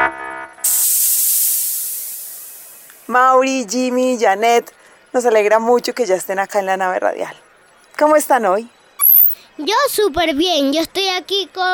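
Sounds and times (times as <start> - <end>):
speech: 3.1 - 7.4, 8.0 - 8.8, 9.6 - 11.7
short tone: 9.0 - 9.4.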